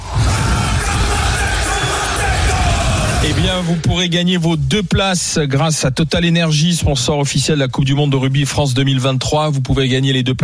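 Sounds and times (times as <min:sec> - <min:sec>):
rumbling crowd-like roar: 0:00.0 - 0:03.9
haka war chant by deep male voices: 0:00.2 - 0:03.4
speech: 0:03.2 - 0:10.4.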